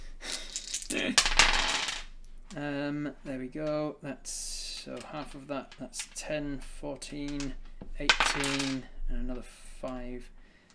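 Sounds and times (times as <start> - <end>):
wooden six-sided dice tumbling and clattering across a hard surface: 0.3 - 2.7, 4.4 - 10.2
speech: 2.6 - 10.4.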